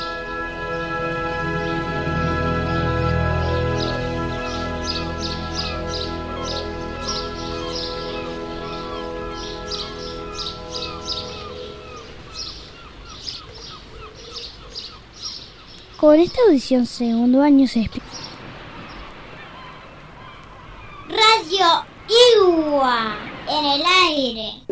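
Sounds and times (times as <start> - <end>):
steady sustained tonal backdrop: 0.0 - 12.6
birds chirping and trilling under fruit trees: 0.0 - 24.6
speech: 16.1 - 18.2.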